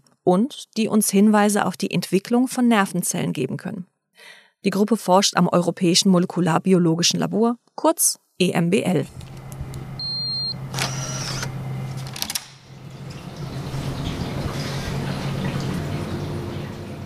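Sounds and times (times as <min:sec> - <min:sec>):
speech: 0:00.2 - 0:09.4
steady low mechanical hum: 0:09.0 - 0:17.0
laboratory water tanks for growing sponges bubbling: 0:12.6 - 0:17.0.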